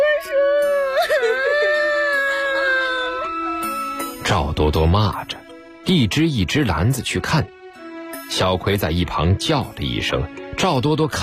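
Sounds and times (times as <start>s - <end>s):
child crying loudly: 0.0s - 4.2s
speech: 4.3s - 7.6s, 8.3s - 11.2s.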